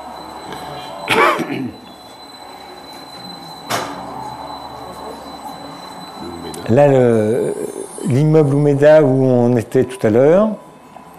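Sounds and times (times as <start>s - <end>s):
steady low hum: 0.0s - 11.1s
speech: 1.4s - 1.8s, 6.7s - 10.6s
train wheel squeal in a station district in Japan: 1.8s - 6.7s.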